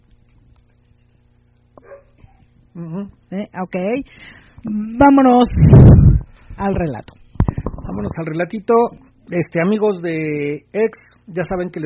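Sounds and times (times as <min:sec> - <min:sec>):
steady low electrical hum: 0:00.0 - 0:11.8
dog barking with a whine-like tail: 0:01.8 - 0:02.4
speech: 0:02.8 - 0:06.0, 0:06.6 - 0:07.2, 0:08.0 - 0:11.8.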